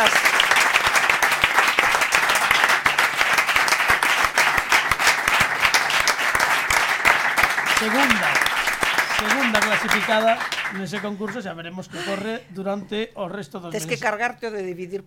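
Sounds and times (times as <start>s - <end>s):
audience applause: 0.0s - 11.4s
speech: 7.8s - 8.3s, 9.2s - 15.0s.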